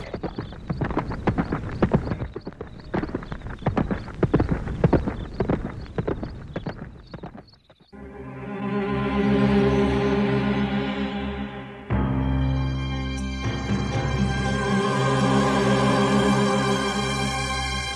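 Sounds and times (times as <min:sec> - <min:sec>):
horse hooves clip-clopping: 0:00.0 - 0:08.0
sustained tonal drone: 0:08.0 - 0:17.8.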